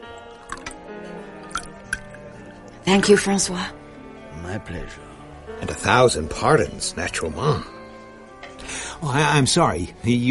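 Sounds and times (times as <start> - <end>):
Chardonnay wine pouring into a glass: 1.4 - 2.2
bright little plinks and drips: 1.4 - 3.5
speech: 2.9 - 3.8, 4.5 - 7.8, 9.0 - 10.3.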